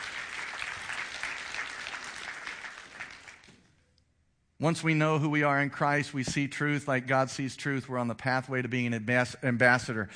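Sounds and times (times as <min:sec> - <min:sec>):
audience clapping hands in applause: 0:00.0 - 0:03.6
speech: 0:04.6 - 0:10.1.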